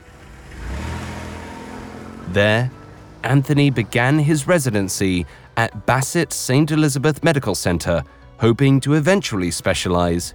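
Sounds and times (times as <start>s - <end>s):
car engine accelerating as the car drives off: 0.0s - 6.4s
road noise: 0.0s - 10.3s
speech: 2.3s - 10.3s.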